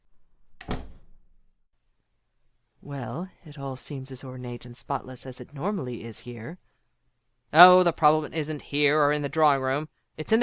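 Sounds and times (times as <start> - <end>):
solid door thudding shut: 0.1 - 1.5
speech: 2.8 - 6.7, 7.5 - 10.4.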